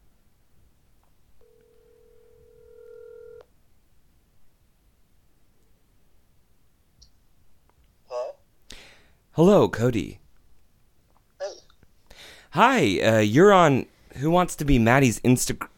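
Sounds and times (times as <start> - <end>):
phone ring tone: 1.4 - 3.4
speech: 9.4 - 10.2, 12.5 - 15.7.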